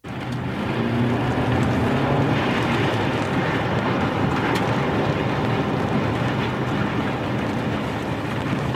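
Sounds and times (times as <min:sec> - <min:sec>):
tornado roar from a played video: 0:00.0 - 0:08.7.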